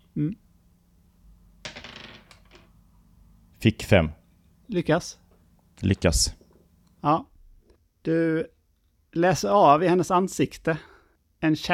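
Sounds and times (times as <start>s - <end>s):
speech: 0.2s - 0.4s, 3.6s - 5.2s, 5.8s - 6.4s, 7.0s - 7.3s, 8.0s - 8.6s, 9.2s - 11.7s
die clattering and tumbling across a hard tabletop: 1.6s - 2.7s.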